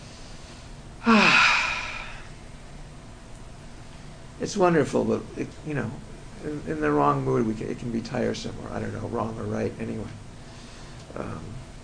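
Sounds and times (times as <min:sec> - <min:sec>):
slow deep breath let out in an audible sigh with a faint voiced edge: 0:01.0 - 0:02.3
speech: 0:04.4 - 0:10.2, 0:11.1 - 0:11.6.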